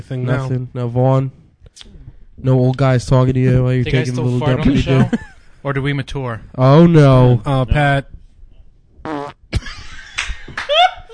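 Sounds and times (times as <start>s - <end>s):
speech: 0.0s - 8.1s
people laughing: 4.6s - 5.4s, 9.6s - 11.1s
fart muffled through woven boxer shorts: 9.0s - 9.5s
excited vocal sounds: 10.6s - 11.1s.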